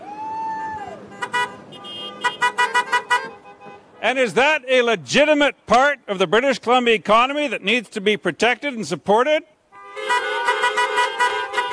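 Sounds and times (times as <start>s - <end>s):
steady road rumble: 0.0s - 11.7s
logging truck horn honking in British Columbia: 1.1s - 4.2s, 9.7s - 11.7s
speech: 4.0s - 10.2s.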